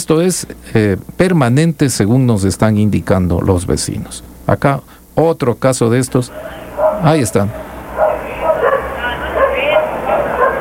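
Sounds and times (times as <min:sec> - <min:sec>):
steady low noise: 0:00.0 - 0:10.6
speech: 0:00.1 - 0:07.7
dogs barking and yipping at night in a neighborhood: 0:06.2 - 0:10.6.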